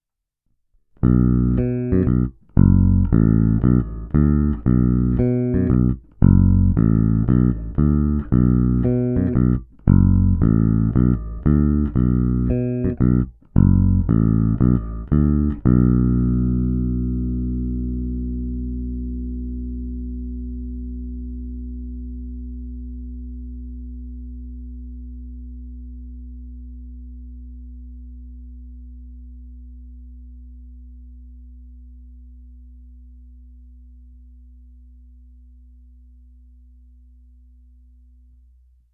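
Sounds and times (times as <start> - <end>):
electric guitar with bridge and middle pickups in parallel: 1.0 - 27.2.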